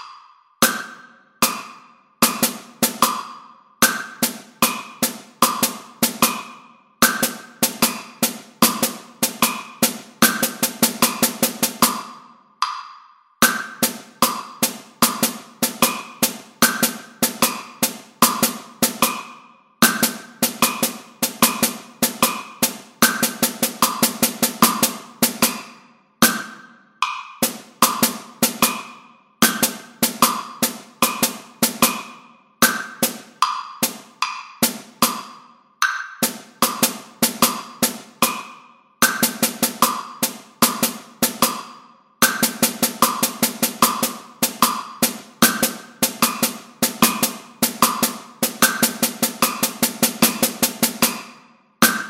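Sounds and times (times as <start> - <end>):
drum set: 0.7 - 12.2, 13.4 - 26.6, 27.4 - 35.4, 36.2 - 52.0.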